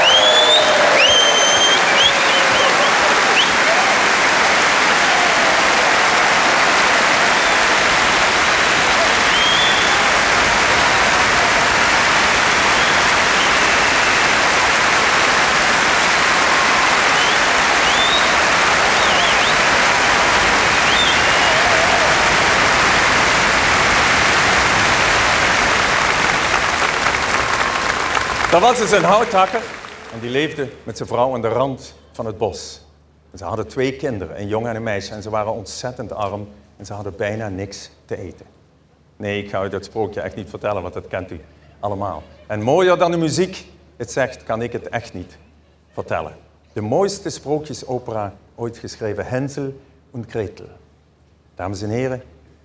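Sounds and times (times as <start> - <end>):
faint whistles or cheers: 0.0 - 7.9, 8.6 - 14.7, 15.6 - 22.6
large concert audience applauding for an orchestra: 0.0 - 30.9
speech: 28.6 - 38.6, 39.2 - 45.4, 46.0 - 50.8, 51.6 - 52.3.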